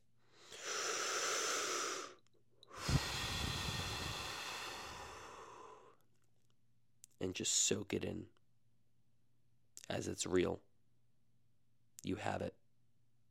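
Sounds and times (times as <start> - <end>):
deep breath in and out: 0.2 - 6.0
speech: 7.2 - 8.4, 10.0 - 10.7, 12.0 - 12.6.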